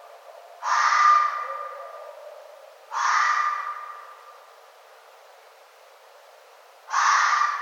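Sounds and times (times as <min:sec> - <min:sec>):
red fox barking: 0:00.6 - 0:04.3, 0:06.9 - 0:07.6.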